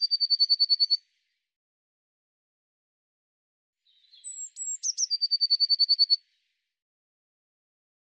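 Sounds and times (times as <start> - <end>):
Eurasian blue tit song of sharp high notes and trills: 0.0 - 1.0, 3.9 - 6.2.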